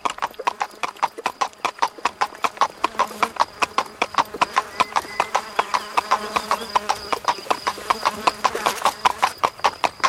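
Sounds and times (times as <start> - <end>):
panicked horse's hooves galloping on a hard surface: 0.0 - 10.0
faint horse whinny: 4.7 - 6.7.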